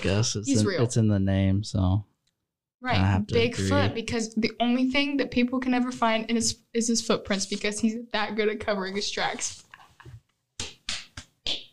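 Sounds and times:
speech: 0.0s - 2.1s, 2.8s - 9.7s
hand slapping a knee: 10.6s - 11.7s.

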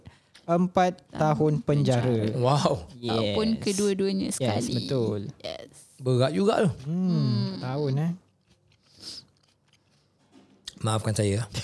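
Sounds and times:
soft mouth sounds: 0.0s - 8.2s
chewing pickled fruit: 0.0s - 11.0s
speech: 0.5s - 8.2s, 10.8s - 11.6s.

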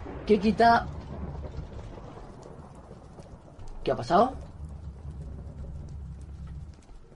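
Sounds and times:
video game sword thunder strike effect: 0.0s - 7.1s
speech: 0.3s - 1.0s, 3.9s - 4.4s.

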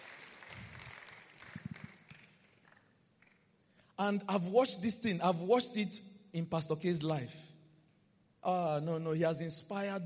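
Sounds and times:
crowd applauding: 0.0s - 3.4s
speech: 4.0s - 7.5s, 8.4s - 10.0s.

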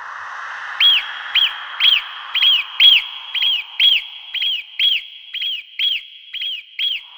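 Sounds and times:
marmot's sharp whistles: 0.8s - 7.1s.

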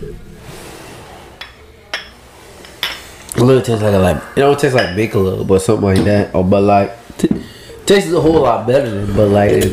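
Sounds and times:
drinking glasses clinking in a toast: 1.4s - 3.2s, 3.8s - 6.3s
speech: 3.4s - 9.7s.

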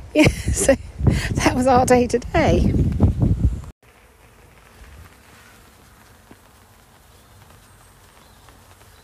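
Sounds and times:
speech: 0.1s - 3.0s
bees buzzing: 3.8s - 9.0s.

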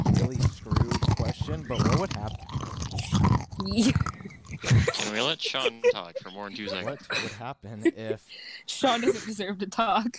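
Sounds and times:
chewing crunchy trail mix: 0.0s - 5.1s
speech: 3.6s - 4.1s, 5.3s - 10.1s
laughter: 3.7s - 8.2s, 8.8s - 9.4s.

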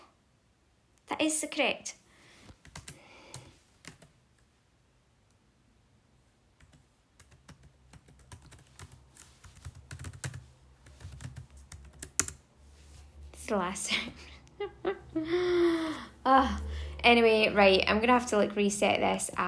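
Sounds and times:
faint low hum: 0.0s - 19.4s
speech: 1.1s - 2.0s, 13.5s - 14.3s, 16.2s - 19.4s
rapid computer keyboard typing: 2.6s - 4.2s, 6.6s - 12.4s.

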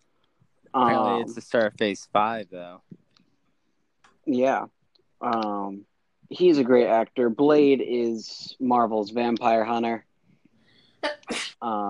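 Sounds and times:
speech: 0.7s - 2.9s, 4.3s - 10.1s, 11.0s - 11.8s
person sneezing: 0.9s - 1.3s, 11.0s - 11.6s.

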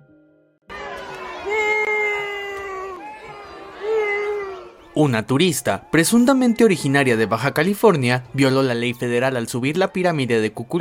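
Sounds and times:
drawn-out wavering yells: 0.7s - 9.2s
crowd shouting and jeering at a female tourist at the Chichen Itza archaeological zone: 0.7s - 10.7s
speech: 5.0s - 10.7s.

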